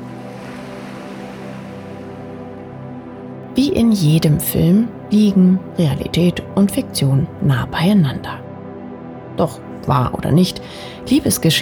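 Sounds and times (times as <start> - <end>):
ocean waves crashing against a ship's hull: 0.0 - 2.9
speech: 3.6 - 8.4, 9.4 - 11.5.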